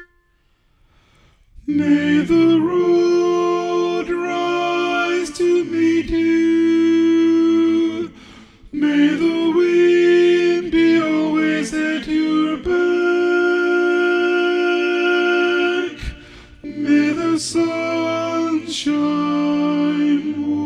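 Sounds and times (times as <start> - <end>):
loud tenor singing: 1.7 - 20.6.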